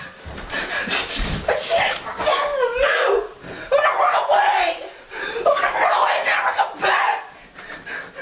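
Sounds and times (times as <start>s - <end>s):
teenage boy screaming in a tantrum: 1.5s - 7.4s.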